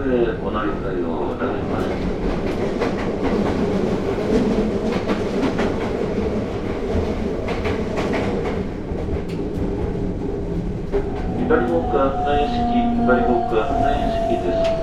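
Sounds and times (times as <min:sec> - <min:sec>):
speech: 0:00.0 - 0:02.8, 0:11.5 - 0:14.8
train carriage rolling along the rails heard from inside: 0:00.0 - 0:14.8.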